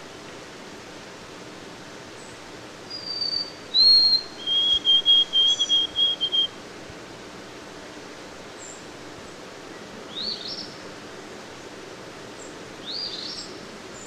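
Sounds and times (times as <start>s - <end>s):
white-throated sparrow whistled song: 2.9s - 6.5s, 12.8s - 13.5s.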